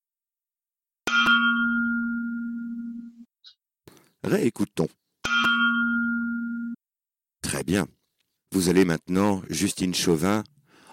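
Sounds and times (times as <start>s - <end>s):
stainless steel water bottle struck and ringing: 1.0s - 3.1s, 5.2s - 6.8s
speech: 4.2s - 5.0s, 7.6s - 10.6s.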